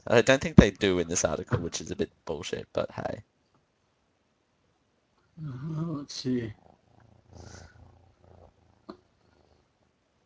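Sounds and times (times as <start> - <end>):
speech: 0.1 - 3.4, 5.4 - 6.6, 7.4 - 7.7
cat purring next to the microphone: 5.4 - 10.2.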